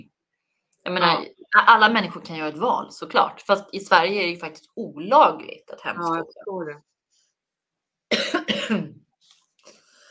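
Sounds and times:
speech: 0:00.9 - 0:06.9, 0:08.1 - 0:09.0
sharp loud coughs: 0:08.1 - 0:09.0.

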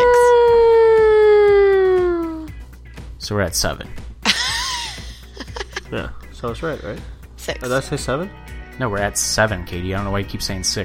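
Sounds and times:
siren wailing in a single sustained tone: 0:00.0 - 0:02.5
speech: 0:03.3 - 0:04.0, 0:05.9 - 0:10.8
laughter: 0:04.2 - 0:06.1.

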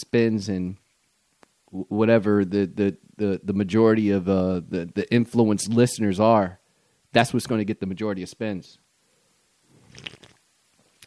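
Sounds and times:
speech: 0:00.0 - 0:00.8, 0:01.7 - 0:08.8
slurping coffee: 0:09.8 - 0:10.4.

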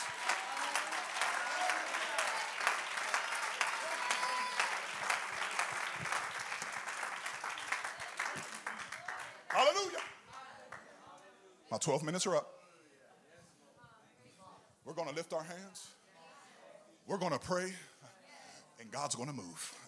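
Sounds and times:
faint voices and cheers: 0:00.0 - 0:06.1
large congregation clapping: 0:00.0 - 0:10.9
speech: 0:11.7 - 0:12.6, 0:15.0 - 0:16.0, 0:17.1 - 0:17.9, 0:18.8 - 0:19.8.

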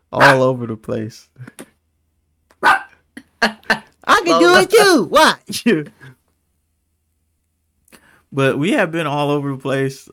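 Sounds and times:
speech: 0:00.1 - 0:01.6, 0:04.3 - 0:06.2, 0:08.3 - 0:10.1
dog barking: 0:00.2 - 0:00.4, 0:02.6 - 0:03.0
dog yelping softly: 0:02.6 - 0:03.0.

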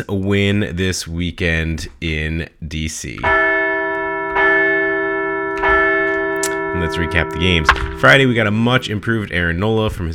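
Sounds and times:
speech: 0:00.0 - 0:03.5, 0:06.8 - 0:10.1
bell struck with a bright sustained metallic tone: 0:03.2 - 0:09.6.

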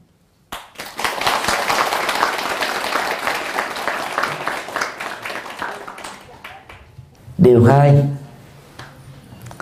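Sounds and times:
audience applause: 0:00.6 - 0:06.9
speech: 0:07.4 - 0:08.1.

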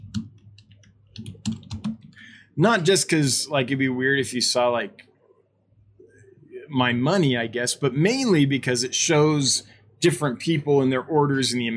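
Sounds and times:
typing on a computer keyboard: 0:00.0 - 0:02.2
speech: 0:02.6 - 0:05.1, 0:06.7 - 0:11.7.

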